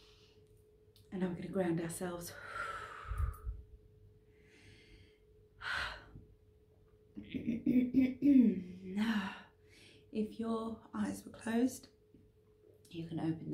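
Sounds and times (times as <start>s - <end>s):
deep breaths during a guided relaxation exercise: 0.0s - 0.6s, 2.2s - 6.3s, 9.0s - 10.2s
speech: 1.1s - 2.8s, 7.7s - 9.3s, 10.1s - 12.0s, 12.9s - 13.5s.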